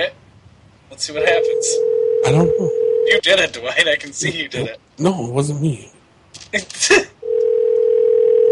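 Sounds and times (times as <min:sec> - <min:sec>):
speech: 0:00.9 - 0:07.2
telephone ringing with steady electronic tone: 0:01.2 - 0:03.2, 0:07.2 - 0:08.4.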